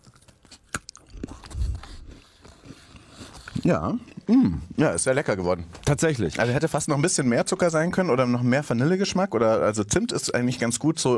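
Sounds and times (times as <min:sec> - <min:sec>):
biting into a crisp freshly baked cookie: 0:00.0 - 0:04.2
speech: 0:03.6 - 0:11.1.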